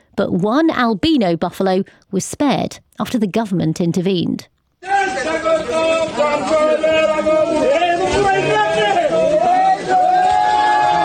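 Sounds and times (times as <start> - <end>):
speech: 0.2 - 8.9
large crowd cheering and shouting: 4.8 - 11.0.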